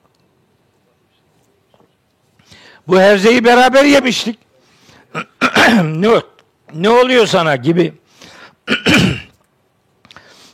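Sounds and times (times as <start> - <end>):
speech: 2.8 - 4.4, 5.2 - 8.0
man clearing his throat after shouting: 5.1 - 6.0, 8.7 - 9.4
man's rough cough-like rasp: 5.1 - 6.0, 8.6 - 9.4.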